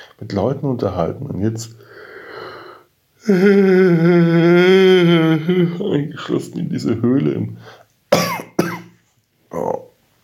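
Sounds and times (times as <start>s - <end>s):
speech: 0.2s - 1.9s, 3.2s - 8.3s
hospital patient coughing painfully: 8.1s - 8.9s.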